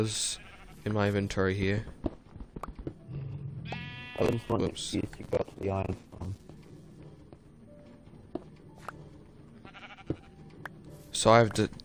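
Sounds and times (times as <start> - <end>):
video game sheep bleating: 0.0 - 1.3, 3.0 - 5.0, 9.5 - 10.5
speech: 0.0 - 2.0, 4.2 - 6.4, 11.2 - 11.8.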